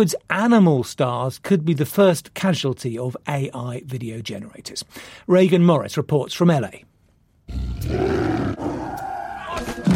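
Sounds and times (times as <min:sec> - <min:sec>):
speech: 0:00.0 - 0:06.9, 0:07.5 - 0:08.7
tiger roaring: 0:07.5 - 0:09.6.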